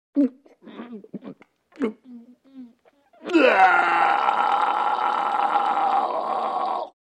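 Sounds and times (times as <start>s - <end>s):
man gagging with long dry vomit: 3.2s - 7.0s.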